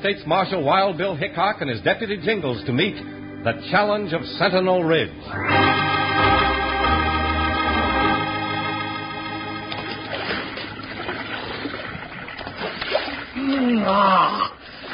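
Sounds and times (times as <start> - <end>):
speech: 0.0 - 5.8, 13.8 - 14.5
sustained musical chord: 2.7 - 11.6
mountain stream water splashing and trickling: 9.9 - 14.9.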